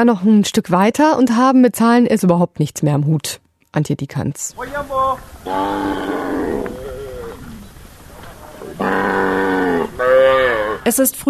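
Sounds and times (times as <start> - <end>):
speech: 0.0 - 6.8, 8.8 - 9.3, 10.1 - 11.2
cattle lowing moos: 5.4 - 7.7, 8.3 - 11.0
goats and sheep bleating: 5.5 - 7.6, 8.4 - 10.9.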